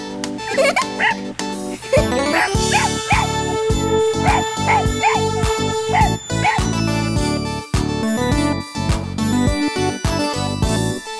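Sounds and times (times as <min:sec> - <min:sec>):
bouncy tinkling musical backing: 0:00.0 - 0:11.1
puppy barking and yipping: 0:00.5 - 0:07.2.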